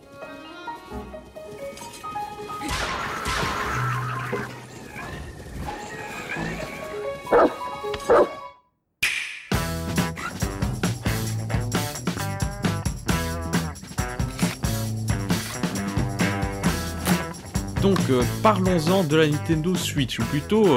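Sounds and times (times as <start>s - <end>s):
music: 0.0s - 4.6s, 5.3s - 20.7s
small dog yapping: 7.3s - 8.4s
speech: 18.1s - 20.7s.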